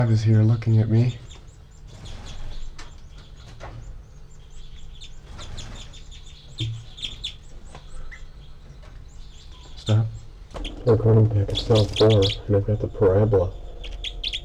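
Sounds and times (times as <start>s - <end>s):
speech: 0.0s - 1.2s, 10.9s - 13.6s
nestling birds begging calls in a nest: 0.7s - 14.4s
steady low hum: 9.8s - 14.4s.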